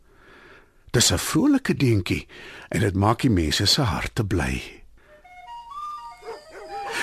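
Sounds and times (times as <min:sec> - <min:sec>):
speech: 0:01.0 - 0:04.8
steady whistle-like tones: 0:05.1 - 0:07.0
dog yelping barks: 0:06.1 - 0:07.0.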